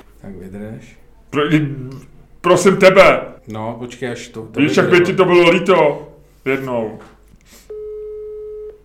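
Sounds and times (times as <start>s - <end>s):
speech: 0.2s - 7.6s
incoming telephone call tone: 7.7s - 8.8s.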